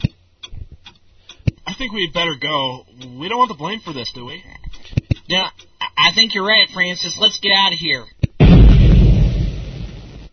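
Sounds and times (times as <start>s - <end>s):
speech: 1.8s - 4.5s, 5.3s - 8.2s
loud arsenal explosion boom: 8.4s - 10.3s.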